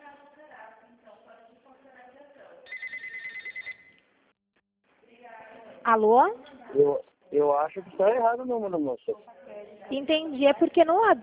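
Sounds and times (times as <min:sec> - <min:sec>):
warbling telephone ring on an outgoing call: 0:02.7 - 0:04.0
speech: 0:05.9 - 0:11.2.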